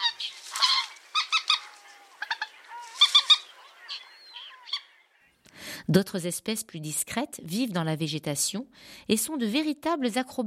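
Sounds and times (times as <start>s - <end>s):
common moorhen calling: 0.0s - 5.4s
speech: 5.9s - 10.4s.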